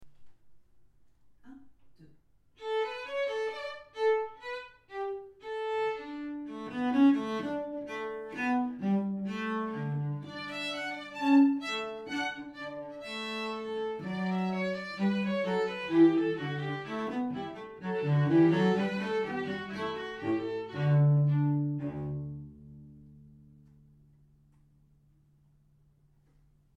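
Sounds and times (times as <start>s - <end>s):
violin: 2.6s - 23.8s
cello: 2.6s - 24.0s.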